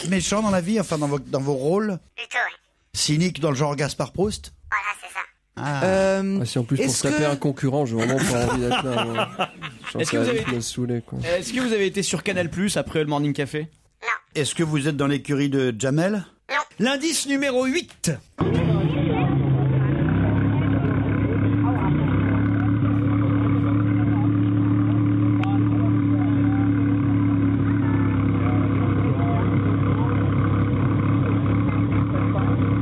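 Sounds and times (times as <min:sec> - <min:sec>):
speech: 0:00.0 - 0:04.9, 0:05.6 - 0:18.6
laughter: 0:06.9 - 0:11.8
voice imitating the engine of an inflatable motorboat: 0:18.4 - 0:32.7.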